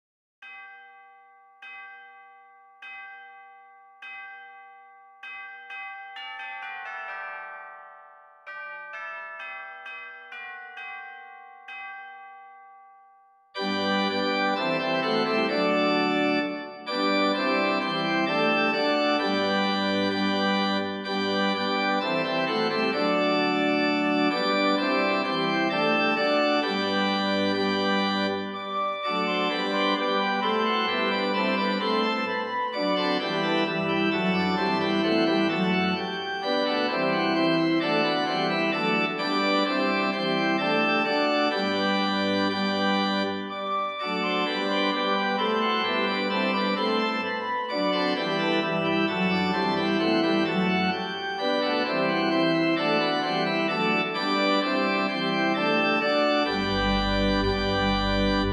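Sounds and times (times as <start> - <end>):
organ bells: 0.4 - 58.5.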